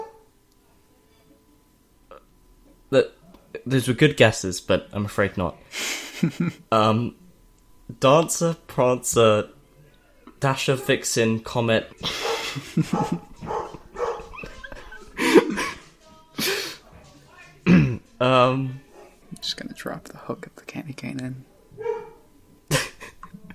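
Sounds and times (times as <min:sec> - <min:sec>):
dog barking: 0:00.0 - 0:00.3, 0:12.1 - 0:14.7, 0:21.8 - 0:22.2
speech: 0:02.9 - 0:07.2, 0:07.9 - 0:09.6, 0:10.4 - 0:13.5, 0:18.5 - 0:18.8, 0:19.4 - 0:21.5
laughter: 0:05.8 - 0:06.7, 0:12.0 - 0:16.8, 0:22.7 - 0:23.5.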